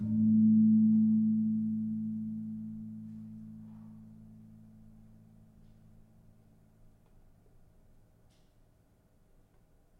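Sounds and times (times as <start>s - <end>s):
kempul gong in a gamelan: 0.0s - 5.6s.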